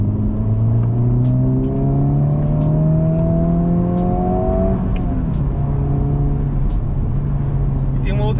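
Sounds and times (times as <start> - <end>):
car engine revving during acceleration: 0.0 - 8.3.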